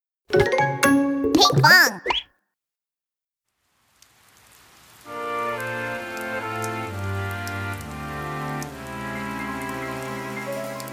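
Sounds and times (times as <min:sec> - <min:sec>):
speech: 0:01.4 - 0:02.2
rain pattering: 0:03.6 - 0:10.9.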